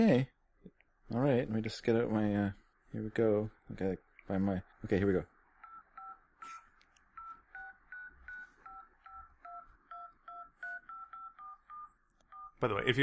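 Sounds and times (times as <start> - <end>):
speech: 0.0 - 0.3, 1.1 - 5.3, 12.6 - 13.0
faint noise: 0.0 - 13.0
two-pitched touch-tone telephone keypad tones: 5.6 - 6.2, 7.1 - 12.6.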